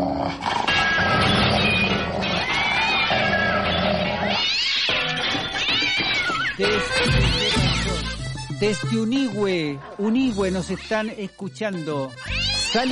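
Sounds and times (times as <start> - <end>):
cat meowing: 0.8 - 8.0, 12.2 - 12.9
speech: 8.6 - 12.9.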